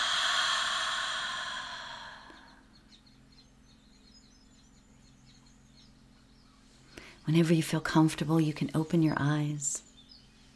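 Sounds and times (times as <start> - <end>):
deep breath in and release: 0.0 - 2.7
speech: 7.3 - 9.9.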